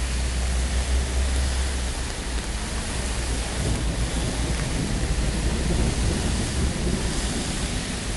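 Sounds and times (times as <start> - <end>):
car traffic on a road: 0.0 - 8.1
rain hiss: 0.0 - 8.1
deep thunder rumbling beside a road: 2.2 - 8.1.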